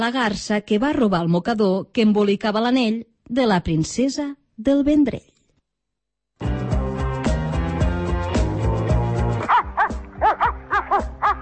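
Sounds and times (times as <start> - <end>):
speech: 0.0 - 5.3
music: 6.4 - 11.4
dog barking: 9.5 - 11.4.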